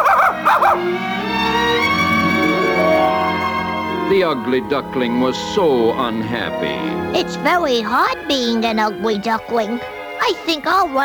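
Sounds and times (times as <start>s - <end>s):
dog yipping barks: 0.0s - 0.8s
sustained musical tones: 0.2s - 11.0s
speech: 4.2s - 11.0s.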